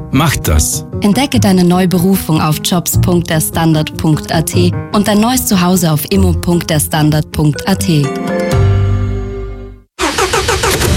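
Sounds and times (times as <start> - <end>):
speech: 0.1 - 8.4
car engine cranking without catching: 10.0 - 10.9.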